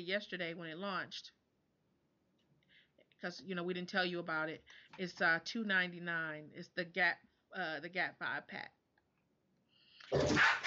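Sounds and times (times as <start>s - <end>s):
speech: 0.0s - 1.4s, 3.2s - 8.8s, 10.1s - 10.6s
dogs barking: 10.2s - 10.6s.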